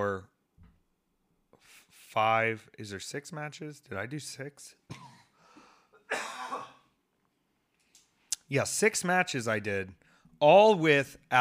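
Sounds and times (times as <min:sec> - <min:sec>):
speech: 0:00.0 - 0:00.3, 0:02.1 - 0:05.1, 0:08.5 - 0:11.3
single sharp cough: 0:04.9 - 0:05.4, 0:06.0 - 0:07.0.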